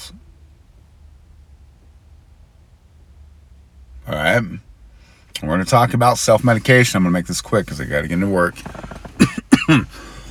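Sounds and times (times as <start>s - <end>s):
speech: 4.1s - 4.7s, 5.4s - 9.0s, 9.7s - 10.1s
person coughing harshly: 9.2s - 10.3s.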